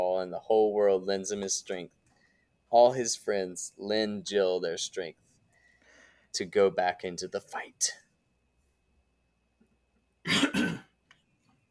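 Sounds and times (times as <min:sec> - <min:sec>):
speech: 0:00.2 - 0:02.0, 0:02.7 - 0:05.3, 0:06.3 - 0:08.0
person coughing: 0:10.3 - 0:11.0.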